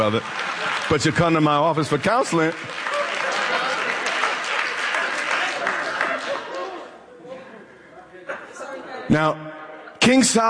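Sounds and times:
speech: 0.0 - 2.9, 9.1 - 10.4
crowd clapping and applauding: 0.0 - 6.9.

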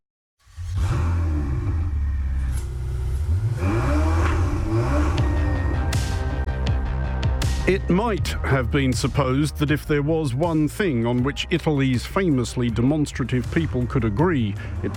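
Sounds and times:
Ferrari car engine revving: 0.4 - 11.0
speech: 7.7 - 14.9.

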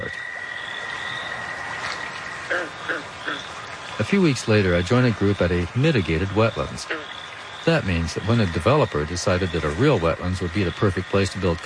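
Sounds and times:
American toad giving a high-pitched musical trill: 0.0 - 4.1, 6.2 - 9.8
soft outdoor night background: 0.0 - 11.6
speech: 2.5 - 11.6.

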